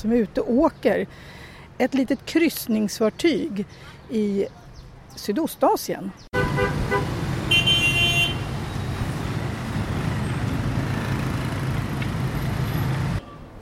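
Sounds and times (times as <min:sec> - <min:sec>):
speech: 0:00.0 - 0:04.6, 0:05.2 - 0:06.4
dense city street traffic: 0:00.0 - 0:13.6
car horn honking: 0:06.3 - 0:08.9.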